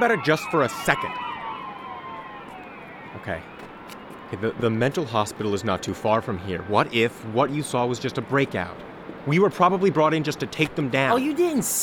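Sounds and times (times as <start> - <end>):
speech: 0.0 - 1.3, 3.2 - 3.6, 4.3 - 11.8
emergency vehicle sirens wailing: 0.0 - 8.1.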